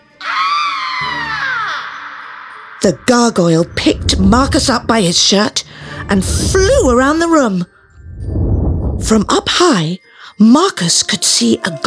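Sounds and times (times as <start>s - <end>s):
witch screaming: 0.1s - 3.2s
speech: 2.8s - 8.4s, 9.0s - 11.8s.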